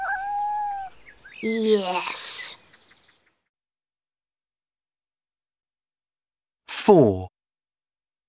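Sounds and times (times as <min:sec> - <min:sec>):
male pet cat meowing: 0:00.0 - 0:01.0
speech: 0:01.4 - 0:02.6, 0:06.9 - 0:07.3.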